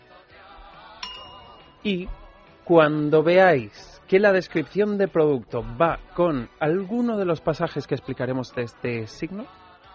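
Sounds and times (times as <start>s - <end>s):
hand bell ringing: 1.0s - 2.5s
speech: 1.8s - 9.6s.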